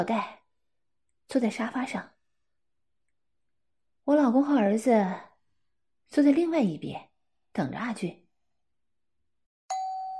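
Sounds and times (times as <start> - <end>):
speech: 0.0 - 0.4, 1.3 - 2.2, 4.1 - 5.3, 6.1 - 8.2
doorbell ding-dong chime: 9.7 - 10.1.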